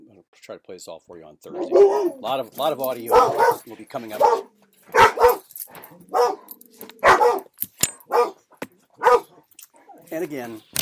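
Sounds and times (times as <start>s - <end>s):
speech: 0.3s - 4.5s, 10.1s - 10.7s
dog barking: 1.5s - 2.3s, 3.0s - 8.4s, 9.0s - 9.5s.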